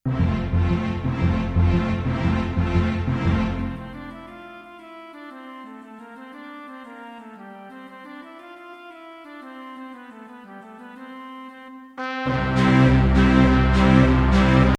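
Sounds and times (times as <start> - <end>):
rollicking band playing: 0.1 - 4.3, 12.0 - 14.7.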